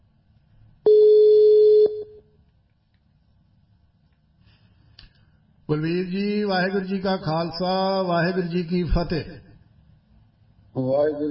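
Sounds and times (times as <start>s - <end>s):
telephone line tone of an outgoing phone call: 0.8s - 2.3s
speech: 5.7s - 9.4s, 10.8s - 11.2s.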